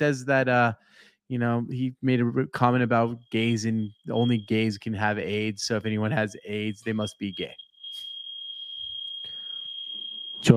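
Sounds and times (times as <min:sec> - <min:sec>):
speech: 0:00.0 - 0:07.6
fire alarm continuous high-pitched tone: 0:03.0 - 0:10.5.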